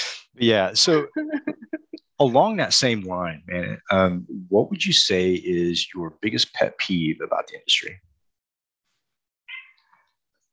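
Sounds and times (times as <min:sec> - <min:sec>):
speech: 0:00.4 - 0:01.6, 0:02.2 - 0:08.1
cat meowing: 0:09.5 - 0:09.8.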